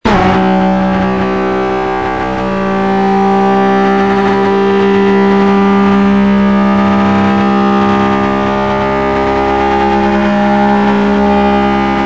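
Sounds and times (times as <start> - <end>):
vehicles: 0.0 - 12.0.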